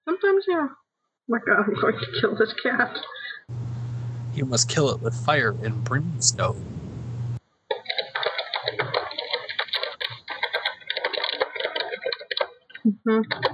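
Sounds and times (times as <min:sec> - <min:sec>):
speech: 0:00.2 - 0:03.7, 0:04.4 - 0:06.9, 0:13.1 - 0:13.5
fast typing on a computer keyboard: 0:07.8 - 0:13.5.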